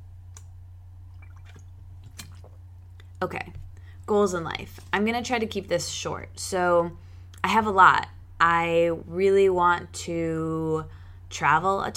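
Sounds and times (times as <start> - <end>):
steady low hum: 0.0 - 11.9
person taking a quiet sip of water: 1.1 - 3.2
soft wet swallowing and slurping clicks: 1.1 - 3.2
speech: 3.2 - 11.9.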